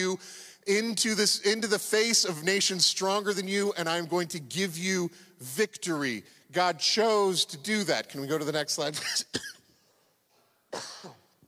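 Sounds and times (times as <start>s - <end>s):
speech: 0.0s - 9.6s, 10.7s - 11.2s
sharp dry cough: 9.0s - 9.7s, 10.7s - 11.4s.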